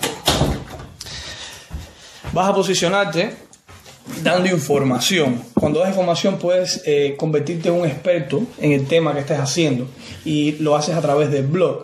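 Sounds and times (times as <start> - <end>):
door pushed shut with a solid thud: 0.0 - 0.9
speech: 2.4 - 3.5, 4.2 - 11.8.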